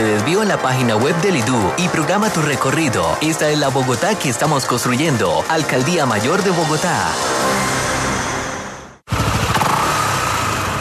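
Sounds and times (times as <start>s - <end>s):
speech: 0.2s - 7.8s
motorcycle engine revving: 9.1s - 10.7s.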